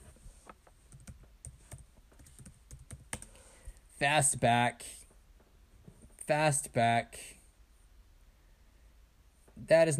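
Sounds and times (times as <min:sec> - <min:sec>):
typing a search on a computer keyboard: 0:00.9 - 0:03.4
speech: 0:04.0 - 0:05.0, 0:06.3 - 0:07.4, 0:09.6 - 0:09.9.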